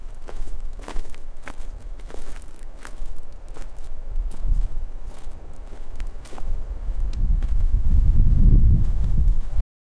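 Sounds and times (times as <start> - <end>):
footsteps along dirt: 0.0 - 7.8
wind: 0.0 - 9.6.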